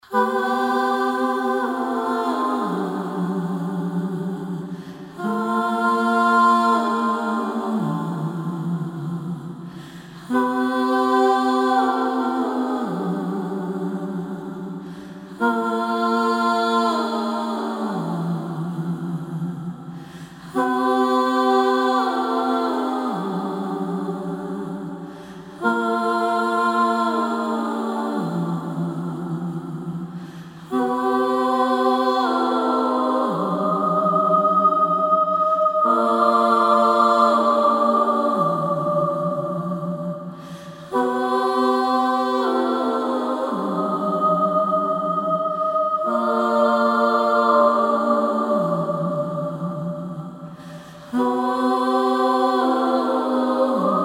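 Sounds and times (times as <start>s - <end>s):
background vocals: 0.0s - 54.0s.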